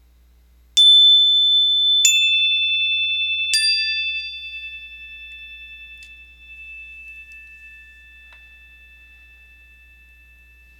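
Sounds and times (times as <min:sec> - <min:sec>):
bright chime strikes: 0:00.8 - 0:10.7.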